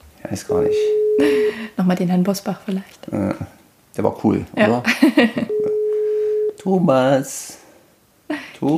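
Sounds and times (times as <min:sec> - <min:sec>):
speech: 0:00.3 - 0:05.6, 0:06.6 - 0:07.6, 0:08.3 - 0:08.7
steady pure telephone tone on an outgoing call: 0:00.5 - 0:01.6, 0:05.5 - 0:06.6.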